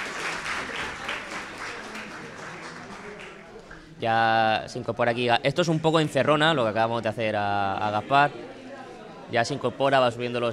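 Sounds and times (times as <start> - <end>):
audience applause: 0.0 - 4.0
speech: 4.0 - 8.6, 9.3 - 10.5.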